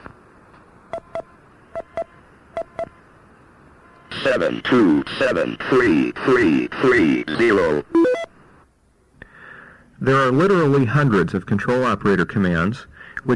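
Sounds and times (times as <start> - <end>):
DTMF telephone dialing tones through a radio repeater phone patch: 0.9 - 2.9, 8.0 - 8.3
noisy radio tone bursts: 0.9 - 3.2, 3.8 - 8.6
speech: 4.3 - 8.1, 10.0 - 13.3.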